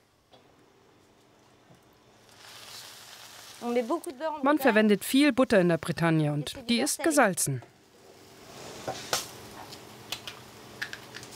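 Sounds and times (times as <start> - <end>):
crêpe batter sizzling on a hot crêpe iron brushed with egg yolk: 2.0 - 4.9, 7.9 - 11.3
speech: 3.6 - 7.7.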